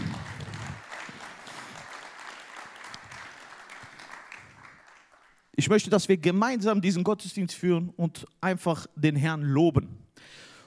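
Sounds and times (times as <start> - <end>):
church service audience cheering and clapping: 0.0 - 5.5
speech: 5.6 - 10.4.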